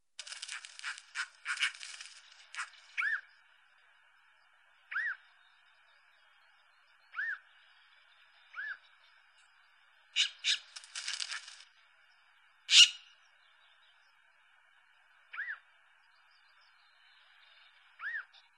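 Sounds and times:
kuksha calling: 0.3 - 3.4, 4.9 - 5.5, 7.0 - 7.6, 8.4 - 9.0, 10.1 - 11.6, 12.7 - 13.2, 15.3 - 15.7, 17.0 - 18.5.

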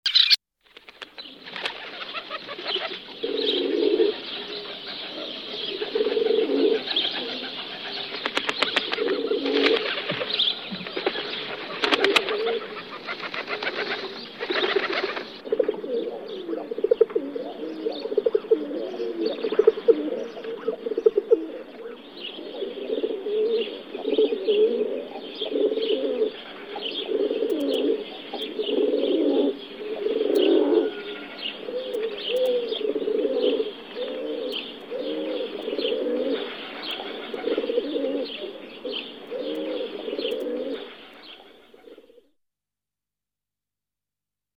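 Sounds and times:
rock dove calling: 0.1 - 42.3.

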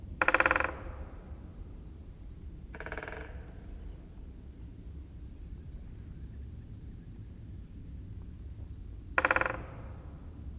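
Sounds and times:
great spotted woodpecker calling: 0.2 - 1.7, 2.5 - 4.1, 8.6 - 10.5.

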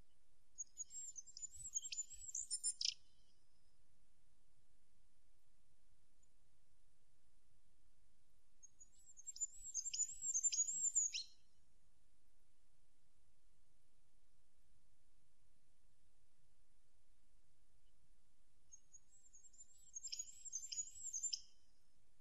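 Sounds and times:
goldcrest calling: 0.6 - 3.0, 9.2 - 11.3, 20.0 - 21.4.

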